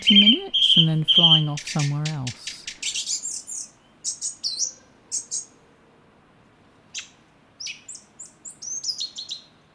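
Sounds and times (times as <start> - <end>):
thrush singing from an ivy bush in a garden: 0.0 - 2.8
speech: 0.1 - 2.6.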